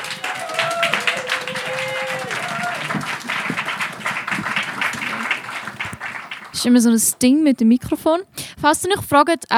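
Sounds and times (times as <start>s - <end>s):
audience whoops and cheers at a poetry slam: 0.0s - 3.2s
dense audience applause at a poetry slam: 0.0s - 6.7s
speech: 6.6s - 9.5s.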